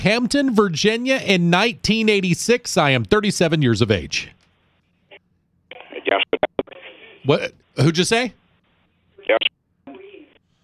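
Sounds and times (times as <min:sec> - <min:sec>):
speech: 0:00.0 - 0:04.4, 0:07.2 - 0:08.4
band-limited telephone voice breaking up: 0:05.1 - 0:08.3, 0:09.1 - 0:10.4.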